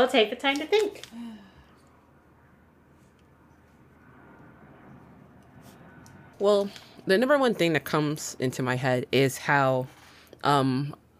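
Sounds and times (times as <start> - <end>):
speech: 0.0 - 1.3, 6.4 - 11.0
airplane droning overhead: 1.1 - 10.4.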